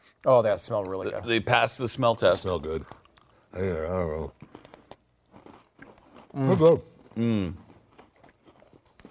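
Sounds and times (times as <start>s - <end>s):
person chewing a crunchy cinnamon-bun-flavored cookie: 0.0s - 9.0s
speech: 0.2s - 4.6s, 6.4s - 7.6s
person murmuring: 6.4s - 7.6s.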